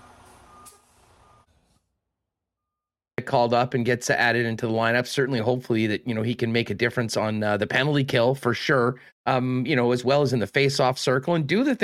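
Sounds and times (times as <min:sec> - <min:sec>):
bus air brakes hissing: 0:00.0 - 0:01.5
large bus engine drone: 0:00.0 - 0:01.5
speech: 0:03.2 - 0:11.8.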